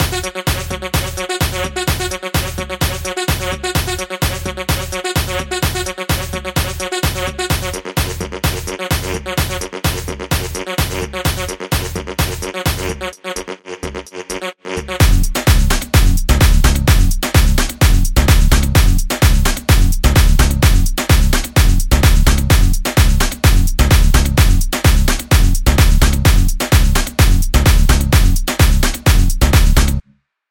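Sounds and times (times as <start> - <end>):
full drum kit loop in F sharp: 0.0 - 13.1, 15.0 - 30.0.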